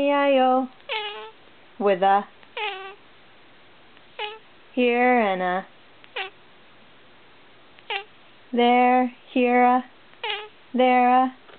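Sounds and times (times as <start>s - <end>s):
speech: 0.0s - 0.8s, 1.8s - 2.4s, 4.8s - 5.8s, 8.5s - 9.9s, 10.7s - 11.4s
cat meowing: 0.9s - 1.4s, 2.5s - 3.0s, 4.2s - 4.4s, 6.1s - 6.4s, 7.8s - 8.1s, 10.2s - 10.6s.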